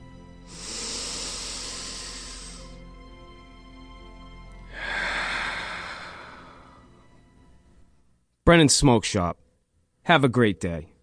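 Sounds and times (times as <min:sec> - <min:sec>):
slow deliberate breathing, inhaling and exhaling: 0:00.4 - 0:03.0, 0:04.5 - 0:08.0
speech: 0:08.5 - 0:09.4, 0:10.1 - 0:10.9.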